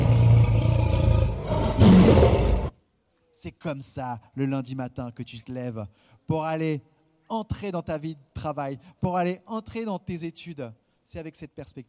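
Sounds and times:
person imitating a big cat's roar: 0:00.0 - 0:02.7
speech: 0:03.4 - 0:11.8.

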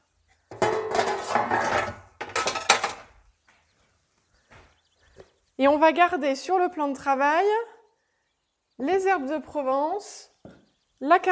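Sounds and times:
dishes and cutlery clattering in a sink: 0:00.5 - 0:03.1
speech: 0:05.6 - 0:07.7, 0:08.8 - 0:10.3, 0:11.0 - 0:11.3.

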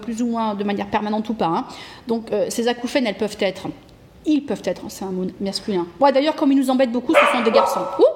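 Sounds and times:
speech: 0:00.0 - 0:08.1
dog barking: 0:07.1 - 0:08.1.

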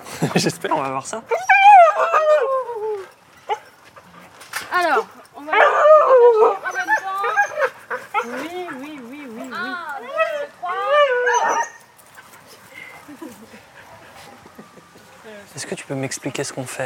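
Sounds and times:
speech: 0:00.2 - 0:02.6, 0:15.5 - 0:16.8
dogs barking and whimpering in an enclosure: 0:00.7 - 0:15.2
dogs howling: 0:01.3 - 0:04.2, 0:04.8 - 0:11.9
laughter: 0:12.7 - 0:15.2.

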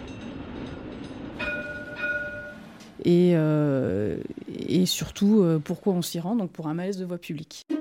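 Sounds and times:
tram rumbling at a tram stop in Échirolles France: 0:00.0 - 0:06.6
bright ringing tone: 0:01.4 - 0:02.7
speech: 0:03.0 - 0:07.7.

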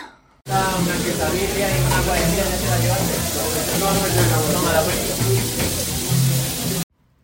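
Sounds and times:
indistinct voices chattering: 0:00.5 - 0:05.6
food sizzling on a hot griddle in a taqueria: 0:00.5 - 0:06.9.

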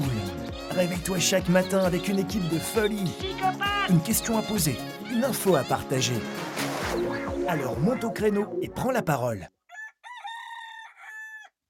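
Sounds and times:
speech: 0:00.8 - 0:09.6
rooster crowing: 0:09.7 - 0:11.6.

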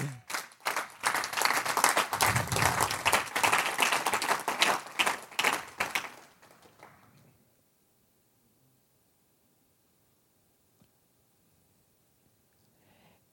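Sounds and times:
audience applause: 0:00.0 - 0:07.1.

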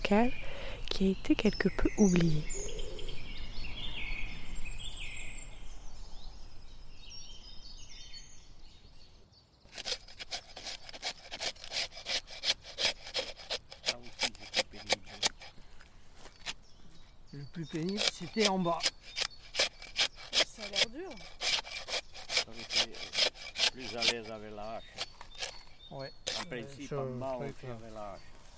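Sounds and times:
steady outdoor hiss: 0:00.0 - 0:28.5
woodpeckers, cuckoos and tits singing in a forest: 0:00.0 - 0:28.5
speech: 0:00.1 - 0:02.5, 0:18.4 - 0:19.0, 0:26.8 - 0:28.4
blade scraping pine bark to tap resin in the Landes, France: 0:09.7 - 0:16.6, 0:17.6 - 0:26.8.

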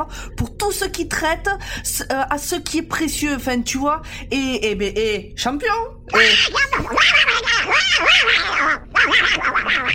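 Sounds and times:
speech: 0:00.0 - 0:09.9
duck quacking: 0:06.2 - 0:09.9.

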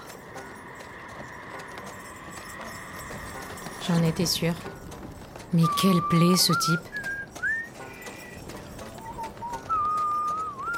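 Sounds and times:
speech: 0:03.9 - 0:04.8, 0:05.5 - 0:06.9
man whistling a slow wavering tune: 0:05.7 - 0:08.4, 0:09.0 - 0:10.7.

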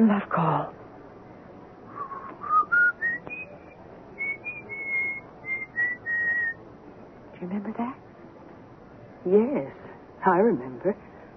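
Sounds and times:
speech: 0:00.0 - 0:00.8, 0:07.4 - 0:08.1, 0:09.2 - 0:11.1
low hum: 0:00.0 - 0:11.3
person whistling an old tune: 0:02.0 - 0:06.6.

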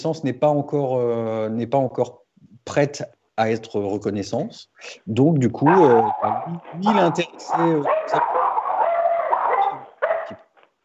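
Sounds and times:
speech: 0:00.0 - 0:08.4
dogs barking excitedly: 0:05.6 - 0:10.5.

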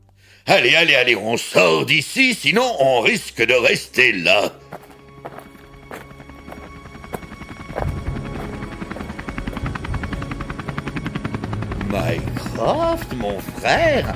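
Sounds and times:
speech: 0:00.4 - 0:04.7, 0:12.6 - 0:14.1
heavy low helicopter engine roar: 0:04.8 - 0:14.1
helicopter rotor thumping while landing: 0:04.9 - 0:14.1.

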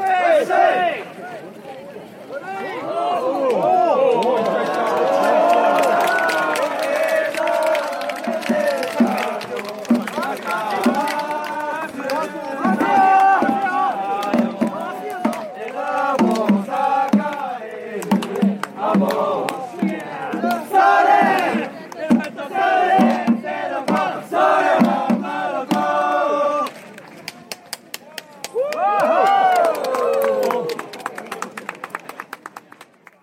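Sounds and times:
dense festival crowd shouting: 0:00.0 - 0:01.4, 0:02.3 - 0:26.6
festival crowd cheering: 0:02.3 - 0:33.2.

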